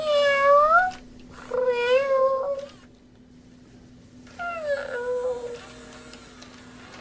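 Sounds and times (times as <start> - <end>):
battery-powered robotic stuffed cat meowing: 0.0 - 2.8, 4.3 - 5.7
faint steady electronic hum: 0.0 - 6.9.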